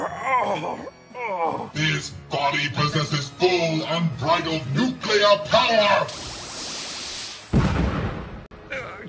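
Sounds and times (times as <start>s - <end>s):
speech: 0.4s - 6.3s
low hiss of a power beam: 6.0s - 7.7s.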